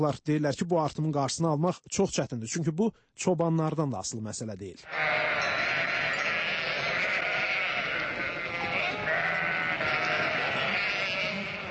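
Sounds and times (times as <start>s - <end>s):
speech: 0.0s - 5.9s
sheep bleating in Azerbaijan: 4.8s - 11.6s.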